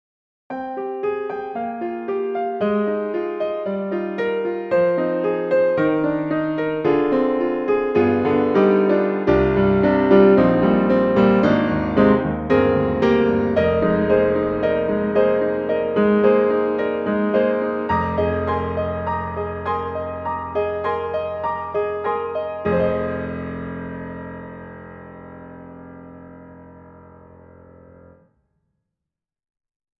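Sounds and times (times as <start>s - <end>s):
grand classical music: 0.5s - 28.3s.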